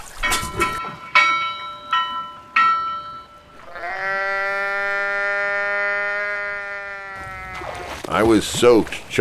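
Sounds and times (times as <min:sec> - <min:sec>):
ringing tones: 0:00.2 - 0:04.0
sheep bleating long and strained: 0:03.6 - 0:08.0
speech: 0:08.3 - 0:09.1.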